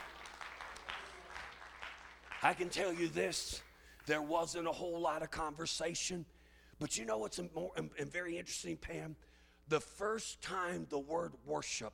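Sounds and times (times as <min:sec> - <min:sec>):
church congregation clapping hands in praise: 0:00.0 - 0:04.3
speech: 0:02.4 - 0:11.9.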